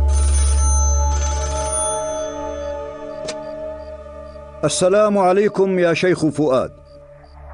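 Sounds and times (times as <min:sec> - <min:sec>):
telephone bell ringing: 0:00.1 - 0:03.0
speech: 0:04.6 - 0:06.8.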